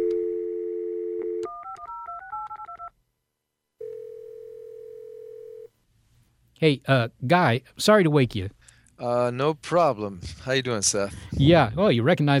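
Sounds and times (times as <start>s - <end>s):
telephone dial tone: 0.0s - 2.9s, 3.8s - 5.7s
speech: 6.6s - 12.3s.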